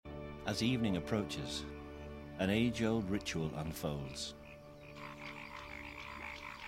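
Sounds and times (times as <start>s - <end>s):
speech: 0.4s - 1.8s, 2.4s - 4.4s
male paddy frogs croaking in mating season: 2.6s - 6.6s.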